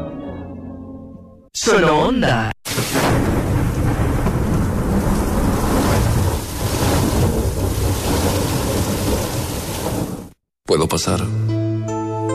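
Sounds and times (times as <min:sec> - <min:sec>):
speech: 0:01.6 - 0:03.3, 0:10.8 - 0:11.6
heavy rain falling outside: 0:02.7 - 0:10.4
deep rumbling: 0:03.0 - 0:10.4.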